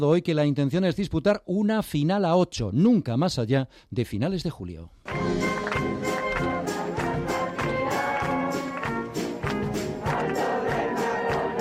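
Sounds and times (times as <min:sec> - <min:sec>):
speech: 0:00.0 - 0:05.5
police music band playing a brass marching tune: 0:05.1 - 0:11.5.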